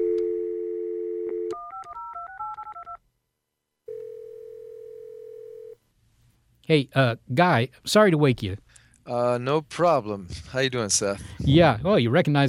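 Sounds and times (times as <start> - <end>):
steady telephone dial tone: 0.0 - 3.0, 3.9 - 5.8
speech: 6.7 - 12.4.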